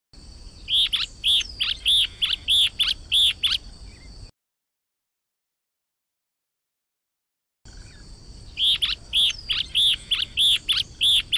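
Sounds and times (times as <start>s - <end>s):
yellow-bellied elaenia song of high rasping notes: 0.6s - 3.7s, 7.9s - 11.3s.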